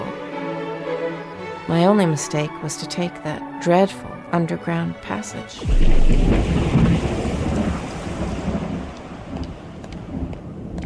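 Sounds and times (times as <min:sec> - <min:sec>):
speech: 0:01.7 - 0:06.6
deep roll of thunder: 0:05.6 - 0:10.8
steady rain: 0:05.6 - 0:10.8.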